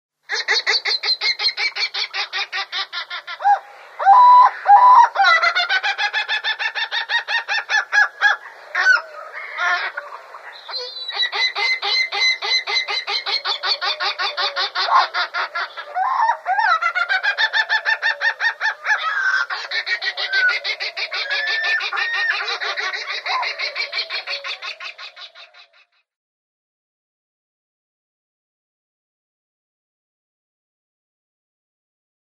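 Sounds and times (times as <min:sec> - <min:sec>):
White-eyed Gull calling: 0:00.3 - 0:25.8.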